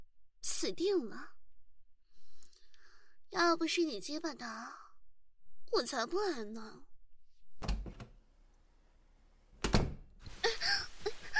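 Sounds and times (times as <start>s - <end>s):
speech: 0.6s - 1.4s, 3.3s - 4.8s, 5.7s - 6.9s
door shut with heavy thuds: 7.6s - 8.2s, 9.6s - 10.2s.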